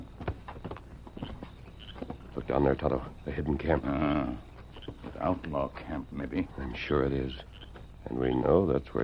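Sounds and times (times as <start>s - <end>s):
footsteps of two people on rough ground: 0.0s - 6.6s
speech: 2.5s - 4.5s, 5.2s - 9.0s.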